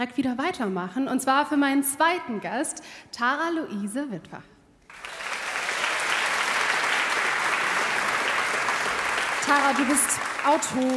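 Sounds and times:
speech: 0.0s - 5.1s, 9.5s - 10.9s
audience applause: 4.9s - 10.9s.

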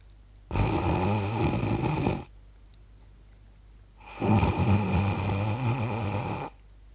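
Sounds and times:
soft delicate nasal snoring: 0.5s - 2.3s, 4.0s - 6.6s.

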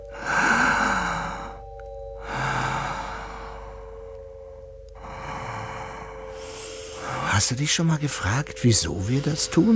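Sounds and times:
slow breathing in and out: 0.0s - 7.4s
speech: 7.4s - 9.7s.

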